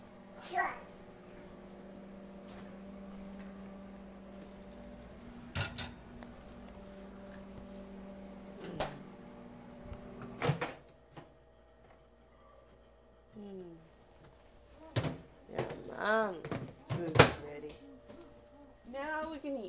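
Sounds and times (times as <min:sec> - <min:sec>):
steady appliance hum: 0:00.0 - 0:19.6
refrigerator door opening and closing: 0:10.2 - 0:10.8.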